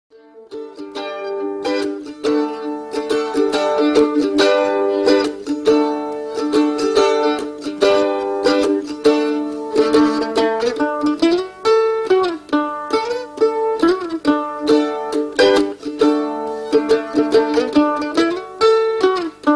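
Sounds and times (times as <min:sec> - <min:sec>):
mandolin playing: 0:00.1 - 0:19.5.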